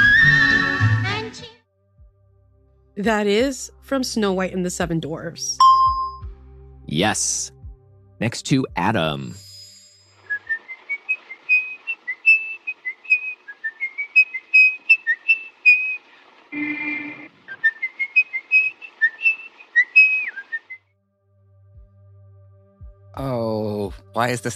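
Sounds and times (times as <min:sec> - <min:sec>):
man whistling a lively tune: 0:00.0 - 0:01.0, 0:05.6 - 0:06.3, 0:09.6 - 0:16.0, 0:16.6 - 0:20.8
speech: 0:03.0 - 0:05.7, 0:06.9 - 0:07.6, 0:08.2 - 0:09.5, 0:24.2 - 0:24.5.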